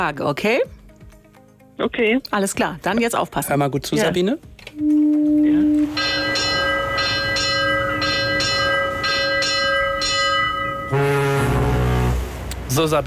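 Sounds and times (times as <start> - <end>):
speech: 0.0 - 0.8, 1.8 - 6.1, 12.7 - 13.0
ship's bell struck as a ship departs: 4.8 - 12.0
fuller tonal sound: 4.8 - 12.6.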